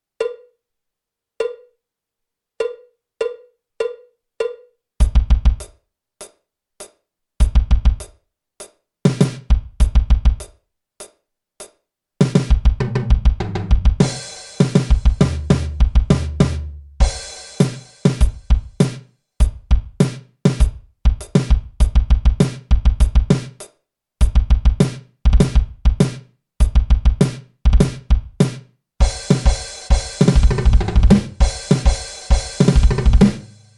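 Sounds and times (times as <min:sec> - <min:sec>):
hard rock drum kit solo: 0:05.0 - 0:05.8, 0:07.4 - 0:10.6, 0:12.2 - 0:33.7.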